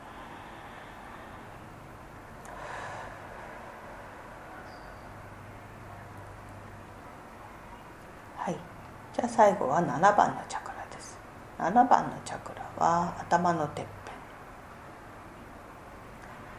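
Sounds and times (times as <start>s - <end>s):
deep breath: 0.0s - 1.8s, 2.4s - 5.1s
steady hiss: 0.0s - 16.5s
speech: 9.4s - 10.6s, 11.6s - 14.0s.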